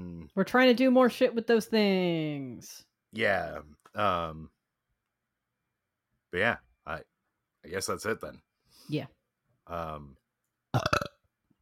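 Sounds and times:
speech: 0:00.4 - 0:04.6, 0:06.3 - 0:10.2, 0:10.8 - 0:11.0
long voiced burp: 0:10.8 - 0:11.2.

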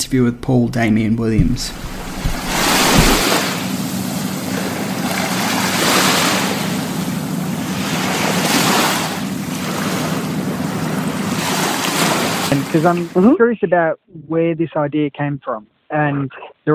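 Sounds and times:
speech: 0:00.1 - 0:02.1, 0:12.5 - 0:16.7
wind across the microphone: 0:01.3 - 0:03.6
waves washing onto a shore at Perth: 0:01.7 - 0:13.2.

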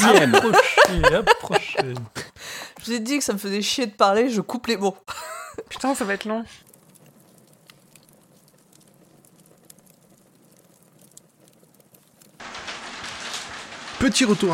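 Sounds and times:
laughter: 0:00.0 - 0:02.3
speech: 0:00.1 - 0:06.7, 0:14.0 - 0:14.5
very large hailstones striking windows: 0:05.4 - 0:14.5
steady rushing patter of downpour: 0:12.4 - 0:14.5.

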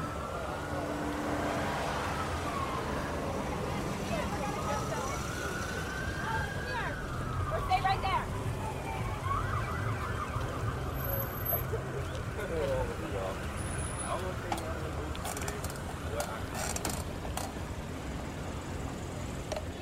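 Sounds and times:
indistinct crowd voices murmuring: 0:00.0 - 0:09.7, 0:10.4 - 0:17.6
siren wailing faintly: 0:00.0 - 0:12.0
slow-moving street traffic with engines idling and passing: 0:00.0 - 0:19.7.

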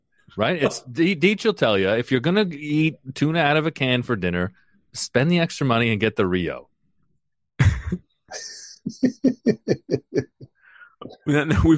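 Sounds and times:
speech: 0:00.4 - 0:06.7, 0:07.9 - 0:10.4, 0:11.0 - 0:11.7
man coughing: 0:07.6 - 0:09.6
laughter: 0:07.6 - 0:10.6
man drawing a raspy breath: 0:10.6 - 0:11.0.

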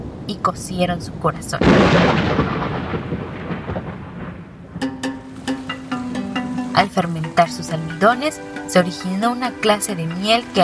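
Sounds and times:
speech: 0:00.3 - 0:03.2, 0:06.8 - 0:10.6
loud crack of rolling thunder: 0:01.5 - 0:05.8
soft ringing musical notes: 0:04.8 - 0:10.6.

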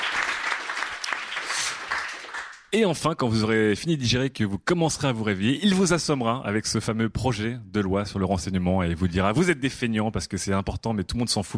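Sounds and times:
audience applause after a comedy act: 0:00.0 - 0:02.7
speech: 0:02.7 - 0:11.5.

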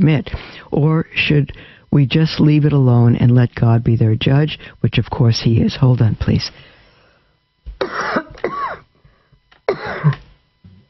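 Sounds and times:
speech: 0:00.0 - 0:06.7, 0:10.0 - 0:10.2
person clearing throat with a cough: 0:07.8 - 0:08.9, 0:09.7 - 0:10.8.

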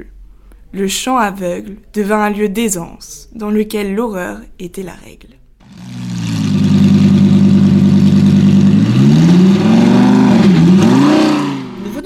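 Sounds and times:
speech: 0:00.0 - 0:05.8
car engine droning and revving: 0:05.6 - 0:12.0.

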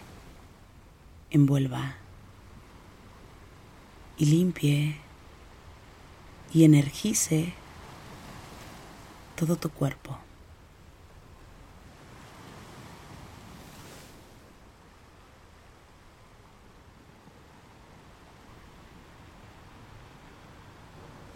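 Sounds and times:
ocean surf washing onto a shore: 0:00.0 - 0:21.3
wind: 0:00.0 - 0:21.3
speech: 0:01.3 - 0:02.0, 0:04.2 - 0:05.0, 0:06.5 - 0:07.6, 0:09.4 - 0:10.2.

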